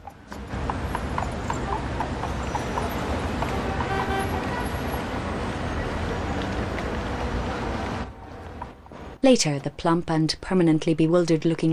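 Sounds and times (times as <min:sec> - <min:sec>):
police horse hooves clip-clopping along a street: 0:00.0 - 0:09.0
traffic noise: 0:00.0 - 0:11.7
speech: 0:09.2 - 0:11.7.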